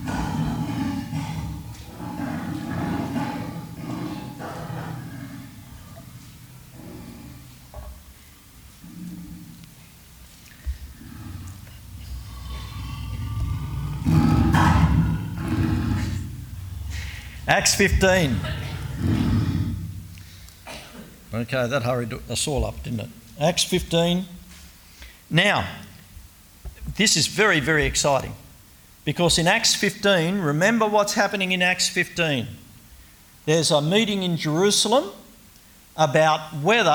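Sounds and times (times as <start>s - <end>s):
lion roaring and growling: 0.0s - 7.8s, 8.8s - 9.8s, 10.7s - 20.1s
speech: 17.6s - 19.1s, 21.4s - 24.4s, 25.3s - 25.8s, 27.0s - 28.4s, 29.0s - 32.6s, 33.5s - 35.2s, 36.0s - 36.9s.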